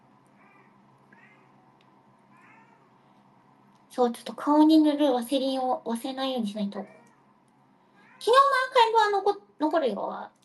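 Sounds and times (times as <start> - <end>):
low steady hum: 0.0 - 10.4
cat meowing: 0.4 - 1.6, 2.3 - 3.0, 6.8 - 7.3, 8.0 - 8.3
speech: 4.0 - 7.0, 9.0 - 10.4.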